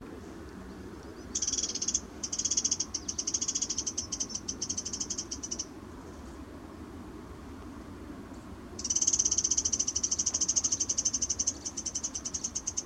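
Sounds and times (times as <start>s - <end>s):
low background noise: 0.0s - 12.8s
Eurasian wren (Troglodytes troglodytes) giving rapid sharp high ticking notes: 0.7s - 5.7s, 8.8s - 12.8s.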